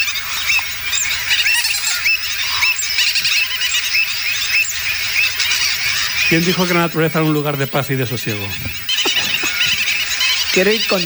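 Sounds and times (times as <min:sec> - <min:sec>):
flamingos calling: 0:00.0 - 0:11.0
gull-billed terns and common terns calling: 0:00.0 - 0:11.0
speech: 0:06.3 - 0:08.8, 0:10.6 - 0:11.0
laughter: 0:06.3 - 0:11.0.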